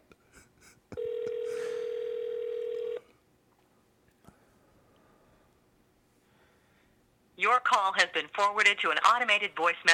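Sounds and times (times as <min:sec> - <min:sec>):
faint noise: 0:00.0 - 0:09.9
ringback tone on an outgoing phone call: 0:01.0 - 0:03.0
speech: 0:07.6 - 0:09.9.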